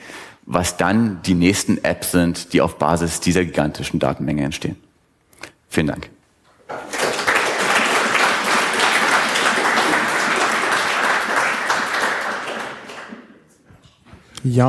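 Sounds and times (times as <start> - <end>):
speech: 0.5 - 4.8, 5.8 - 6.8, 14.4 - 14.6
audience applause after a talk: 6.7 - 13.4.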